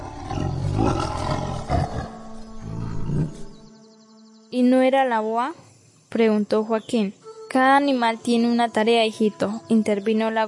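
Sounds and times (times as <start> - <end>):
tiger roaring: 0.0 - 3.6
speech: 4.5 - 10.4.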